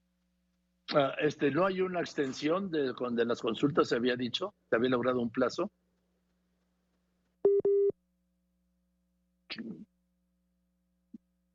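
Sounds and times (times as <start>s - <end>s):
speech: 0.9s - 5.8s
telephone busy tone after a dropped call: 7.4s - 7.9s
brief throat-clearing noise: 9.5s - 9.9s.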